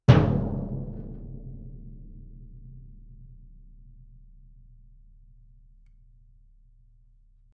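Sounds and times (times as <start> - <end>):
very loud bass drum hit: 0.0 - 4.0.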